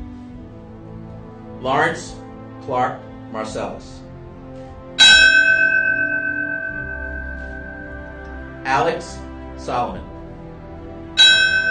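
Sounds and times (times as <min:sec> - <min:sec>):
speech: 0:01.6 - 0:04.0, 0:08.7 - 0:10.1
memorial bell tolling: 0:05.0 - 0:09.4, 0:11.2 - 0:11.6.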